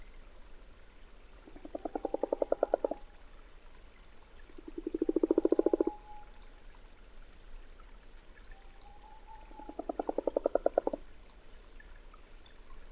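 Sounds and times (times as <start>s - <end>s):
common frog croaking by a temporary forest pond in Valdrôme forest: 1.5s - 3.0s, 4.6s - 6.0s, 9.6s - 11.0s.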